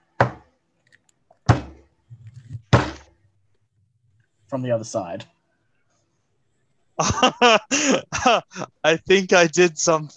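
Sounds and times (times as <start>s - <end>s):
knuckles knocking on a door: 0.2s - 0.4s
speech: 4.5s - 5.4s, 7.0s - 10.1s
laughter: 7.0s - 10.1s.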